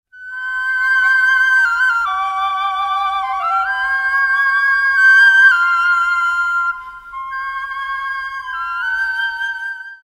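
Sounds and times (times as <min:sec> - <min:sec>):
aerophone: 0:00.1 - 0:10.0.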